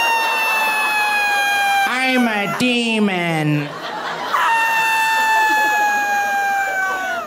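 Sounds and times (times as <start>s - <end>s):
piercing high-pitched blood-curdling scream by a person in bed: 0.0s - 2.6s, 4.4s - 7.2s
laughter: 0.0s - 7.2s
speech: 2.1s - 3.8s.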